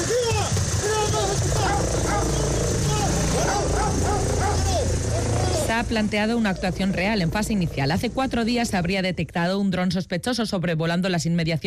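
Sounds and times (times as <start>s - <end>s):
police dogs barking and yipping during a security exercise: 0.6s - 5.8s
speech: 5.8s - 11.6s.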